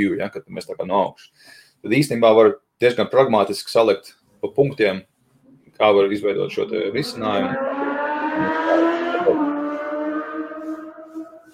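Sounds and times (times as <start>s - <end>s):
speech: 0.0s - 5.1s, 5.8s - 7.8s
fast car or motorcycle passing by: 6.5s - 11.5s.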